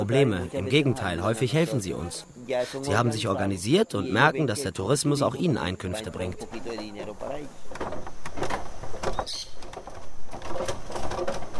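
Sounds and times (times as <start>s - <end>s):
speech: 0.0s - 8.0s
wooden suspension bridge creaking under footsteps of hikers: 6.4s - 11.5s.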